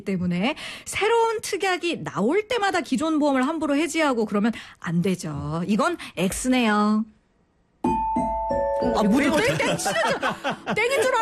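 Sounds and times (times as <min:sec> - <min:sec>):
speech: 0:00.0 - 0:07.2, 0:08.8 - 0:11.2
multi-note ding-dong chime like a public-address announcement tone: 0:07.9 - 0:09.3
laughter: 0:09.2 - 0:11.2.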